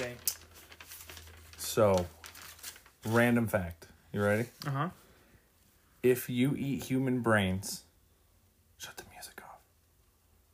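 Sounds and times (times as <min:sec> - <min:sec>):
speech: 0:01.8 - 0:02.2, 0:03.0 - 0:05.0, 0:06.0 - 0:07.9, 0:08.8 - 0:09.0
person whispering close to the microphone: 0:08.8 - 0:09.7.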